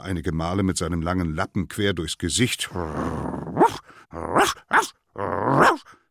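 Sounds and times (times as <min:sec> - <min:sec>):
speech: 0:00.0 - 0:05.0
small dog growling and yapping: 0:03.0 - 0:05.9.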